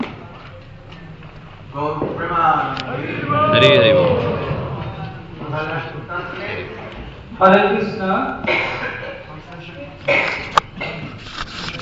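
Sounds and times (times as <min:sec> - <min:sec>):
speech: 0:01.8 - 0:04.3, 0:05.5 - 0:08.8
murmur of crowd noise: 0:02.6 - 0:07.4
devotees with colds coughing in an audience: 0:08.4 - 0:09.4.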